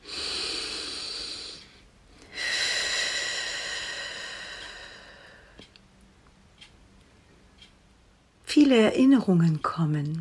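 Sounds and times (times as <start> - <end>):
slow deep breathing during meditation: 0.0 - 5.8
speech: 8.6 - 10.1.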